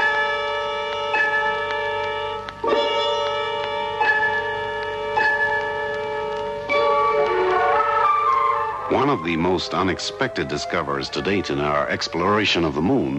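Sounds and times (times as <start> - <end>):
bell ringing: 0.0 - 10.0
steady shimmering hum of sustained tones: 0.0 - 13.1
speech: 9.0 - 13.1.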